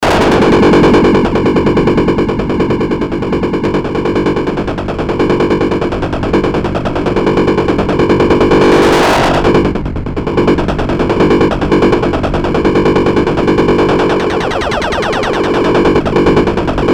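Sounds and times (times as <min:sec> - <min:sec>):
8-bit Moog Minitaur synth: 0:00.0 - 0:16.9.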